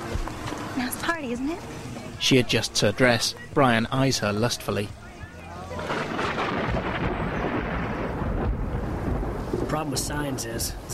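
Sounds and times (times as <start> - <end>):
speech: 0.8 - 5.0, 9.7 - 10.9
heavy rain pouring: 5.8 - 10.9
deep rolling thunder rumbling: 5.9 - 10.9.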